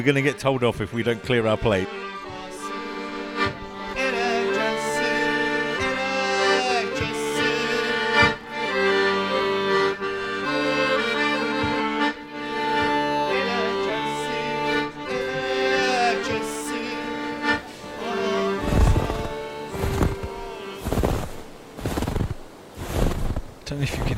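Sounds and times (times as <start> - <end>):
speech: 0.0 - 2.1
sustained tonal sound: 0.0 - 24.1
footsteps crunching through snow by a river: 17.7 - 24.1.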